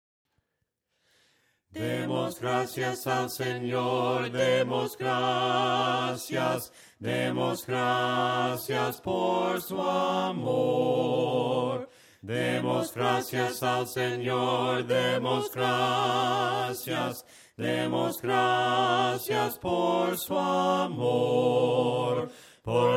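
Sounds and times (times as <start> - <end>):
a cappella hymn singing: 1.7 - 22.9.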